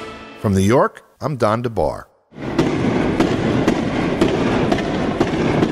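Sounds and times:
speech: 0.5s - 2.5s
tear gas launchers fired by troops at civilians: 2.4s - 5.7s.

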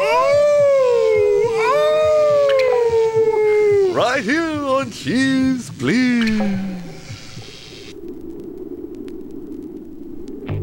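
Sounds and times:
person howling like a wolf: 0.0s - 4.0s
speech: 4.2s - 6.7s.

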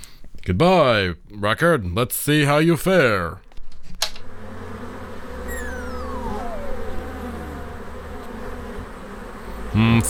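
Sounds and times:
speech: 0.5s - 3.4s, 9.8s - 10.0s
swarm of bees buzzing: 4.4s - 10.0s.

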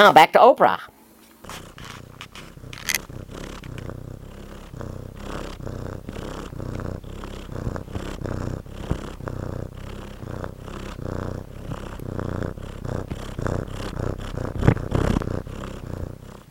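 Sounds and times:
speech: 0.0s - 1.6s
faint brief clicks and scrapes: 1.2s - 4.0s
cat purring: 1.4s - 16.5s.

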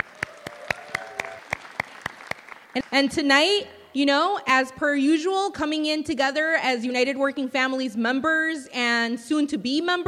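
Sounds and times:
applause at a community organizing event: 0.0s - 3.2s
speech: 2.8s - 10.0s.

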